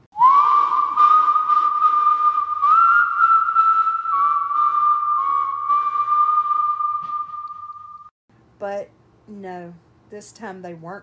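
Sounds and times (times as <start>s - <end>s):
eerie human whistling outside a window: 0.2s - 8.1s
speech: 9.5s - 11.0s.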